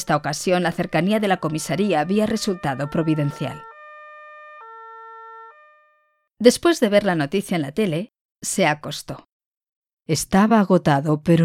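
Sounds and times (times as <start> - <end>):
speech: 0.0 - 3.7, 6.4 - 9.3, 10.1 - 11.4
two-tone emergency siren: 0.0 - 6.3.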